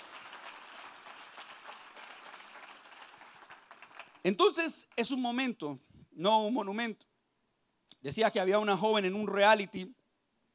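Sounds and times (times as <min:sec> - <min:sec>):
audience applause: 0:00.0 - 0:04.3
speech: 0:04.2 - 0:07.1, 0:08.0 - 0:10.0.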